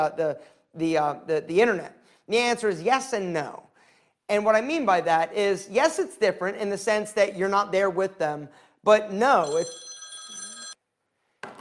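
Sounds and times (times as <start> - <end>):
speech: 0.0 - 3.7, 4.3 - 9.9
cell phone ringing: 9.4 - 10.8.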